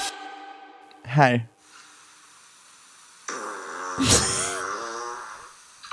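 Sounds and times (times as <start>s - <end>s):
speech: 1.1s - 1.5s, 4.0s - 4.2s
long buzzy fart: 3.2s - 5.6s.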